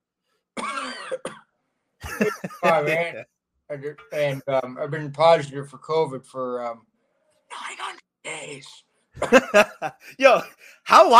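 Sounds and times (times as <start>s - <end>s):
person giving a small restrained cough with a throat-clearing rasp: 0.6s - 1.4s, 2.1s - 3.2s, 9.2s - 10.5s
laughter: 2.0s - 3.2s, 4.0s - 4.6s, 9.2s - 10.6s
speech: 2.2s - 6.9s, 8.4s - 11.1s.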